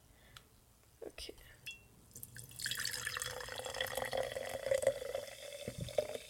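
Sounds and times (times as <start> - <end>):
speech: 1.0 - 1.8
drink base pouring into a glass: 2.1 - 6.2.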